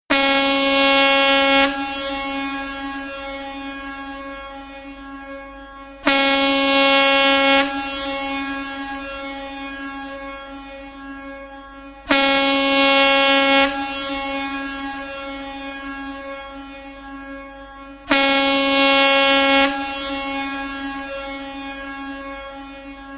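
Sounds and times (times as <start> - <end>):
ship horn: 0.1 - 23.1.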